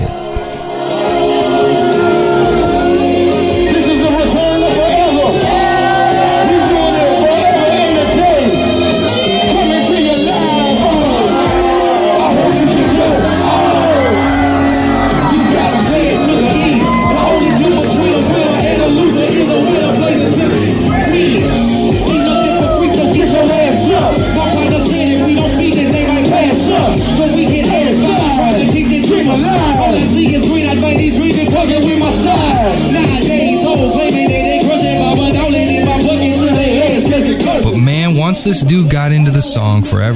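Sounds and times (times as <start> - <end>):
large concert crowd cheering during the final act: 0.0 - 39.8
shouts and whoops: 10.3 - 18.0, 21.9 - 24.6
speech: 39.8 - 40.1.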